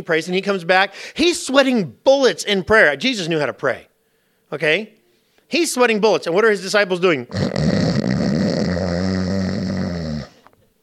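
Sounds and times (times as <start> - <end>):
speech: 0.0 - 3.9, 4.5 - 8.1
person imitating snoring: 7.3 - 10.6.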